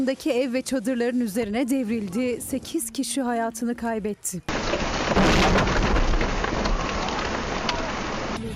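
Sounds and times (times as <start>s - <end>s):
speech: 0.0s - 4.6s
heavy rain pouring: 4.5s - 8.4s.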